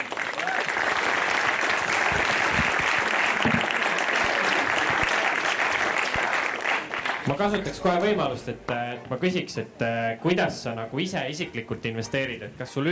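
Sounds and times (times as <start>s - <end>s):
audience applause: 0.0s - 7.6s
speech: 7.4s - 12.9s.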